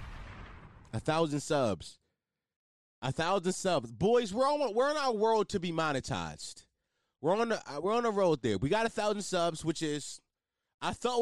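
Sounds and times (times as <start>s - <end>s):
explosion sound effect: 0.0s - 1.2s
gunshot sound effect: 0.0s - 1.2s
speech: 0.9s - 2.0s, 3.0s - 10.2s, 10.8s - 11.2s.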